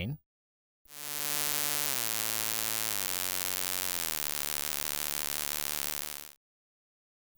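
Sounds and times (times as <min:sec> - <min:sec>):
source filtered impulses: 0:00.9 - 0:06.3.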